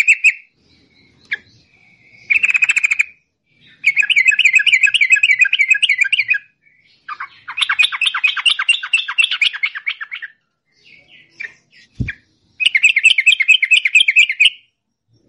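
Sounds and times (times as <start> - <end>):
yellow-vented bulbul long rapid song: 0.0 - 15.2.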